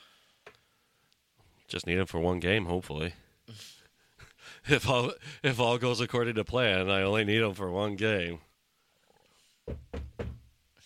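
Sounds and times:
speech: 0:01.7 - 0:03.8, 0:04.6 - 0:08.5
knocking with both hands on a hard surface: 0:09.7 - 0:10.5.

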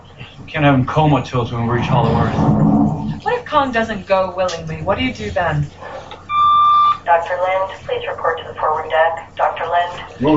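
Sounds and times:
faint hum: 0:00.0 - 0:10.3
speech: 0:00.5 - 0:05.9, 0:07.1 - 0:10.3
steady electronic alarm tone: 0:06.3 - 0:07.0.

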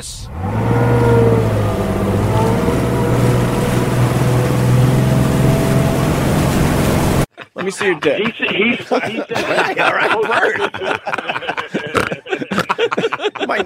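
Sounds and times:
speech: 0:00.0 - 0:00.6, 0:07.7 - 0:13.6
powerful engine revving and taking off: 0:00.0 - 0:07.3
laughter: 0:07.3 - 0:13.6.

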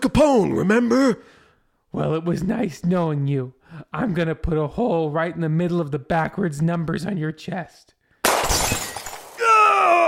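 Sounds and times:
speech: 0:00.0 - 0:08.7
glass plate shattering from a gunshot: 0:08.2 - 0:09.6
sustained loud vocal cry: 0:09.4 - 0:10.0.

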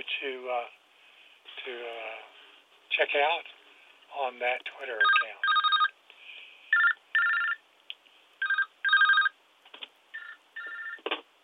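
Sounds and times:
speech: 0:00.1 - 0:00.8, 0:01.5 - 0:02.3, 0:02.9 - 0:05.5
electronic phone ringtone: 0:05.0 - 0:05.9, 0:06.7 - 0:07.6, 0:08.4 - 0:09.4, 0:10.1 - 0:11.0.

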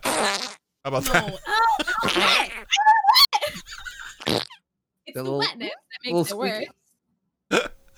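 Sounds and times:
wet sputtering fart sound effect: 0:00.0 - 0:01.2, 0:04.2 - 0:04.5
speech: 0:00.2 - 0:02.8, 0:05.2 - 0:06.8
people laughing: 0:00.9 - 0:04.5.

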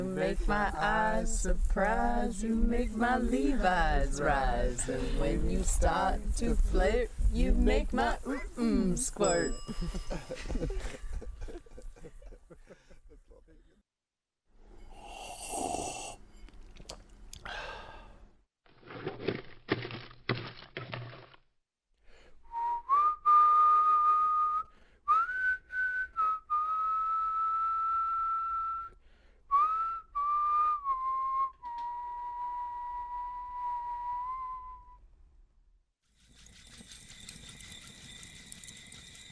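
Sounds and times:
speech: 0:00.0 - 0:11.0
laughter: 0:09.7 - 0:13.7
person whistling a slow wavering melody: 0:22.5 - 0:35.0.

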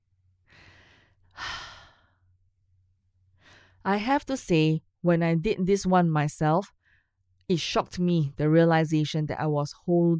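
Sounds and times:
person taking a deep breath in and exhaling: 0:00.4 - 0:02.3, 0:03.4 - 0:03.8
speech: 0:03.8 - 0:06.8, 0:07.5 - 0:10.1.

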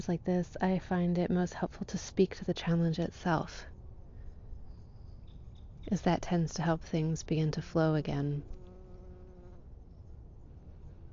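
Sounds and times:
speech: 0:00.0 - 0:03.8, 0:05.8 - 0:08.6
yellow jacket wasp buzzing: 0:08.4 - 0:09.7.

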